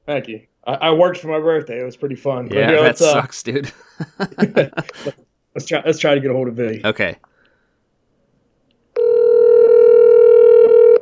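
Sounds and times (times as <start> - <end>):
speech: 0.1 - 7.3
laughter: 2.5 - 5.2
steady telephone dial or ringback tone: 9.0 - 11.0.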